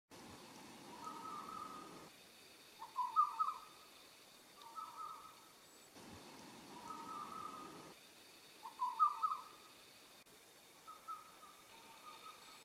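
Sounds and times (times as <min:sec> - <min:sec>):
night bird: 0:00.9 - 0:02.1, 0:02.8 - 0:03.9, 0:04.6 - 0:08.0, 0:08.6 - 0:09.8, 0:10.8 - 0:12.6.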